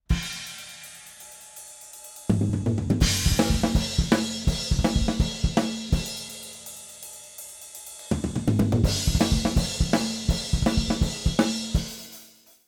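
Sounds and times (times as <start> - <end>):
drum performance recorded with multiple microphones: 0.1 - 1.3, 2.2 - 6.8, 8.0 - 12.1.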